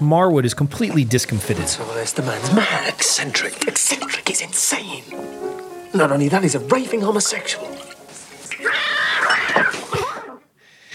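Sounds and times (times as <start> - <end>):
speech: 0.0 - 7.9
cat giving a long loud drawn-out meow: 8.5 - 9.8.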